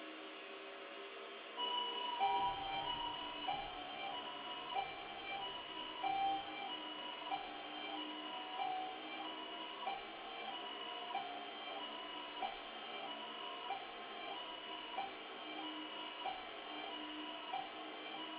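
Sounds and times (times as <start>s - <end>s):
line noise howling with noise canceller on: 0.1s - 18.3s.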